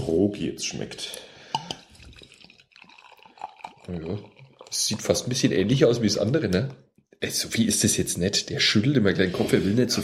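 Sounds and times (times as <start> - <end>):
speech: 0.0 - 1.3, 3.9 - 10.0
wheat beer glugging and splashing as poured into a glass: 1.6 - 5.6.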